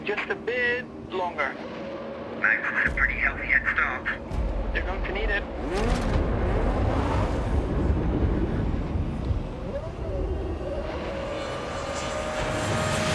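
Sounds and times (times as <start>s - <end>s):
speech: 0.1s - 1.8s
Formula One V8 car engine revving and accelerating away: 3.0s - 13.1s.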